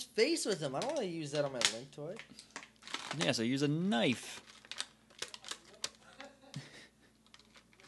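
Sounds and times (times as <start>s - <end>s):
speech: 0.1s - 4.6s
twist tie clicks on plastic toy packaging: 0.5s - 3.3s, 4.4s - 6.0s.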